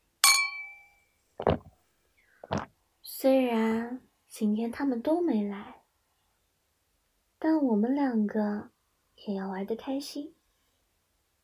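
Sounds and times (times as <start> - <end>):
two glasses of alcohol clinking in a toast at a karaoke venue: 0.2 - 1.0
speech: 3.1 - 5.8, 7.6 - 10.4.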